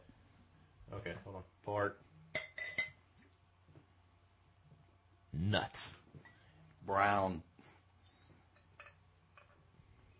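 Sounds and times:
speech: 0.9 - 2.1, 5.4 - 6.0, 6.8 - 7.5
glass clinks as a drink is poured: 2.3 - 3.0.

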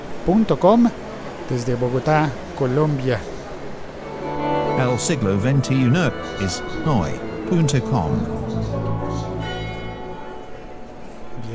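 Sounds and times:
speech: 0.2 - 3.3, 4.8 - 9.3
church bells ringing at noon: 4.0 - 10.9.

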